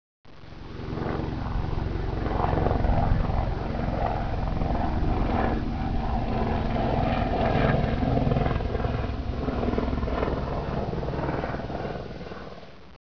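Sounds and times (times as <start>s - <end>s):
airplane: 0.3s - 13.0s.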